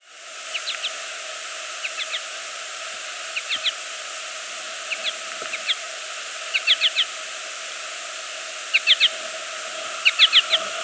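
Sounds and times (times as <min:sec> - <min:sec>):
steady hiss: 0:00.0 - 0:10.8
American goldfinch chirping: 0:00.5 - 0:01.0, 0:01.8 - 0:02.2, 0:03.3 - 0:03.8, 0:04.9 - 0:05.8, 0:06.5 - 0:07.1, 0:08.7 - 0:09.2, 0:10.0 - 0:10.6.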